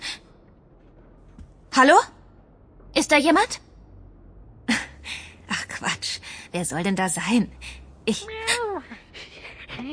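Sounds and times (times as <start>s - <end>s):
speech: 1.8s - 2.2s, 3.1s - 3.7s, 6.5s - 8.4s
cat meowing while shut inside a cupboard: 8.1s - 8.9s.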